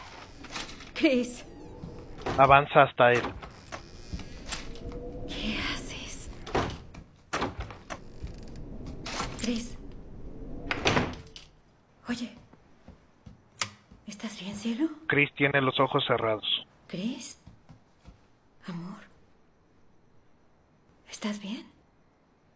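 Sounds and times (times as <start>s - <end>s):
door opening and closing: 0.0s - 11.6s
speech: 1.0s - 1.5s, 2.3s - 3.4s, 9.5s - 9.7s, 14.7s - 17.4s, 21.2s - 21.7s.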